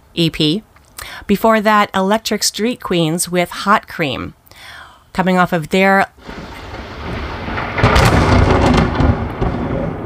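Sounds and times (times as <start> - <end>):
speech: 0.2 - 6.4
summer thunderstorm noise: 6.2 - 10.0
thunder rumbling during a summer thunderstorm: 6.2 - 10.0.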